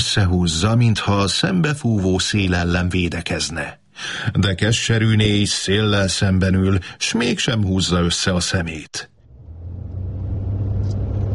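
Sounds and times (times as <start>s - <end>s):
speech: 0.1s - 9.1s
car engine climbing uphill on a road, slowing and rumbling: 9.2s - 11.3s.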